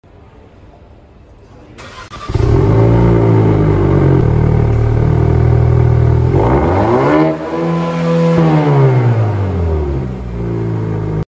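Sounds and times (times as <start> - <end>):
car exhaust: 2.3 - 11.2.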